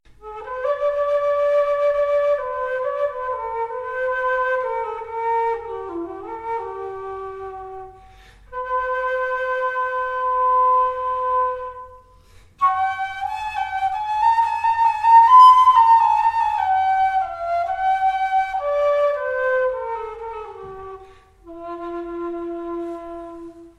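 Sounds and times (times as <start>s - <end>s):
alto quena flute in F: 0.1s - 23.7s.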